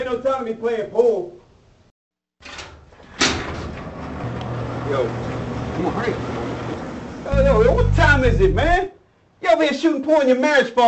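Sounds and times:
speech: 0.1s - 1.4s, 4.9s - 10.8s
sharp clunk of door: 2.4s - 4.6s
door being pulled open: 2.4s - 7.1s
steady scraping rumble of moving door: 2.4s - 8.6s.

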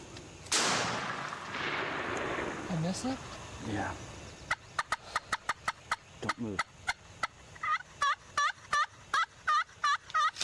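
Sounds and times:
faint hiss: 0.0s - 9.4s
gunshot: 0.5s - 2.9s
speech: 2.9s - 4.1s, 6.2s - 6.7s.

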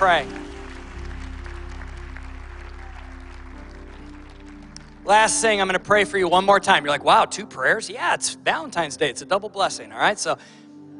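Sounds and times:
speech: 0.0s - 0.5s, 5.1s - 10.6s
audience applause: 0.0s - 5.9s
low steady musical drone: 0.0s - 7.9s.

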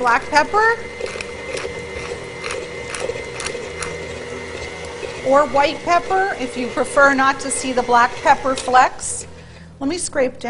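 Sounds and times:
speech: 0.0s - 1.0s, 5.2s - 10.4s
electric stand mixer running while mixing a batter: 0.0s - 9.8s.

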